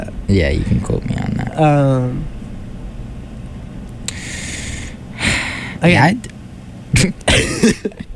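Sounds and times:
speech: 0.3s - 2.3s, 5.8s - 6.3s, 7.0s - 8.0s
cough into a microphone: 7.0s - 8.0s.

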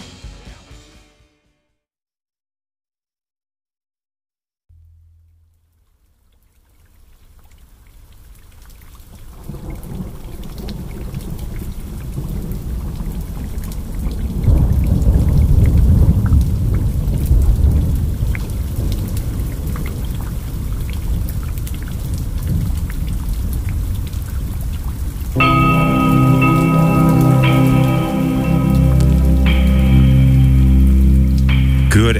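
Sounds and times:
steady heavy tropical rain: 6.8s - 32.1s
deep rumble of thunder: 9.5s - 32.1s
sustained tonal horn-like note: 25.4s - 32.1s.

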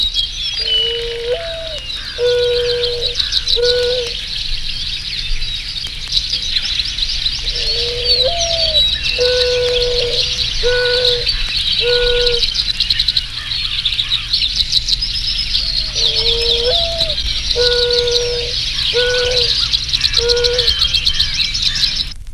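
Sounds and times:
steady high buzz of insects: 0.0s - 5.1s, 6.4s - 22.1s
birds: 0.0s - 22.2s
mourning dove cooing: 0.6s - 4.2s, 7.4s - 12.6s, 15.5s - 21.3s.

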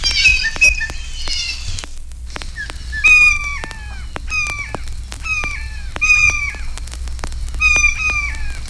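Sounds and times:
blue jay giving harsh nasal descending calls: 0.0s - 6.8s, 7.6s - 8.6s
sharp crackle clicks: 0.0s - 8.6s.

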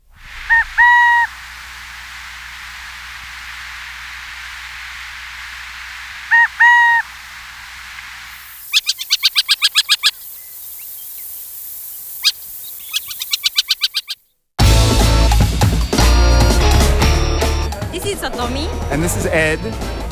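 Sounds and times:
burrowing owl calls: 0.4s - 1.4s, 6.2s - 7.2s, 8.6s - 14.3s
rapid chattering clicks of a burrowing owl: 12.1s - 14.2s
music: 14.6s - 20.1s
speech: 18.4s - 20.0s.

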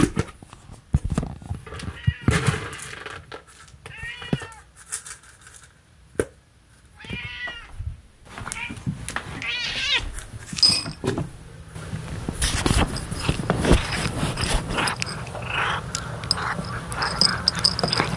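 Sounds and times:
rustling and handling noises: 0.0s - 6.0s, 6.7s - 18.1s
cat meowing: 7.0s - 7.7s, 8.4s - 8.8s, 9.4s - 10.1s.

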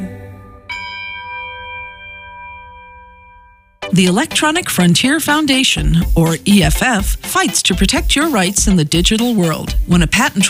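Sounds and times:
Christmas bells ringing: 0.3s - 5.2s
speech: 4.0s - 10.4s.

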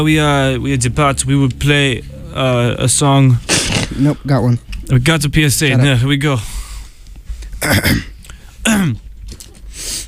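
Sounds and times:
speech: 0.0s - 6.7s, 7.6s - 9.0s
throat clearing: 3.5s - 4.0s, 7.6s - 9.0s
person coughing: 3.5s - 4.2s, 7.6s - 9.0s
soft rough exhales: 3.5s - 4.2s.

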